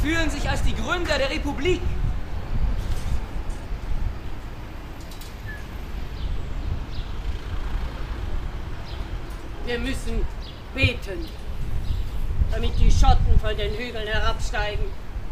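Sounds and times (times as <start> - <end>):
speech: 0.1 - 2.0, 9.7 - 11.4, 12.5 - 15.0
bus engine drone: 2.0 - 9.7.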